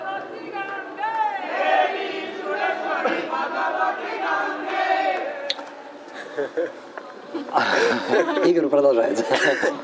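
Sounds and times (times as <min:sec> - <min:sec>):
group of voices singing or chanting: 0:00.0 - 0:06.1
laughter: 0:06.1 - 0:09.8
speech: 0:06.4 - 0:09.8.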